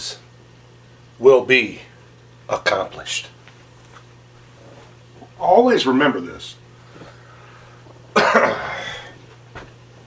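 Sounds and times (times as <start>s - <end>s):
speech: 1.2s - 1.9s, 2.5s - 3.4s, 5.4s - 6.6s
person with allergies and bad sinuses clearing throat: 8.1s - 9.2s.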